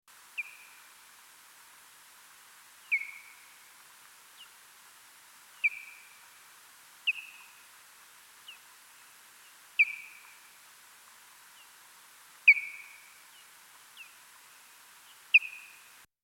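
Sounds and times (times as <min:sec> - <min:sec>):
hoary bat echolocation calls: 0:02.9 - 0:03.6, 0:05.6 - 0:06.2, 0:09.8 - 0:10.5, 0:12.5 - 0:13.2.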